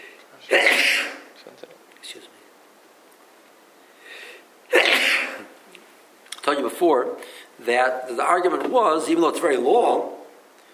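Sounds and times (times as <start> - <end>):
speech: 0.5 - 0.7, 6.5 - 10.2
person sneezing: 0.5 - 1.3, 4.7 - 5.5.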